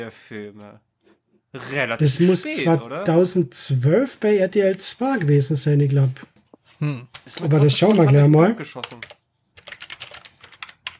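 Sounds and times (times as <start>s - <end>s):
speech: 0.0s - 0.9s, 1.5s - 9.2s
typing on a computer keyboard: 7.2s - 10.9s.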